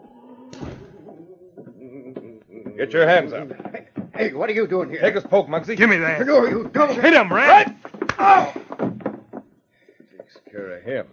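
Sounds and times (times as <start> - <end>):
office door swinging shut with a solid thud: 0.5 - 1.1
office door opening with a heavy thunk: 0.5 - 1.2
speech: 2.8 - 8.6, 10.9 - 11.1.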